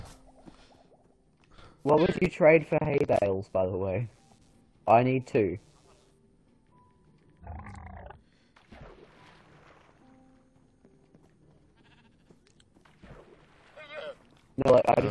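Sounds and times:
speech: 1.8 - 4.2, 4.8 - 5.7, 14.7 - 15.1
sheep bleating: 11.7 - 12.4, 13.8 - 14.3.

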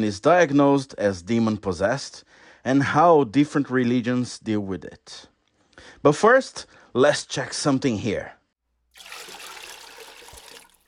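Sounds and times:
speech: 0.0 - 8.4
holy water pouring or trickling: 8.9 - 10.8.

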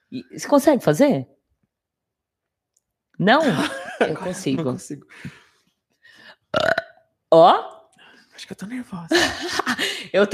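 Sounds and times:
speech: 0.1 - 1.4, 3.2 - 5.4, 6.5 - 7.8, 8.4 - 10.3
laughter: 3.4 - 5.4, 9.1 - 10.1
breathy and deep croaking burps: 6.4 - 7.1.

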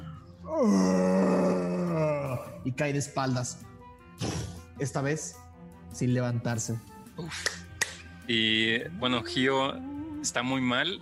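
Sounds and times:
speech: 0.5 - 0.9, 2.6 - 3.7, 4.8 - 7.6, 8.3 - 10.9
loud guttural scream: 0.5 - 2.6.

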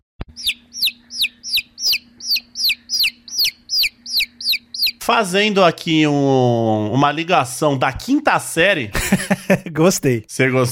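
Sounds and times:
baby chick cheeping: 0.2 - 5.1
faint low hum: 0.3 - 8.2
speech: 5.1 - 10.7
laughter: 8.9 - 9.8.

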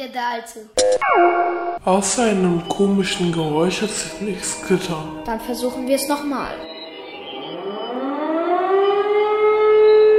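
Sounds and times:
speech: 0.0 - 6.7
mechanical siren wailing: 6.6 - 10.1.

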